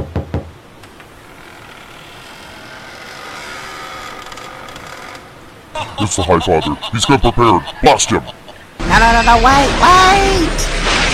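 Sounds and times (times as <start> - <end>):
knocking on a door: 0.0 - 0.5
speech: 5.8 - 8.4, 9.0 - 10.9
laughter: 5.8 - 8.8.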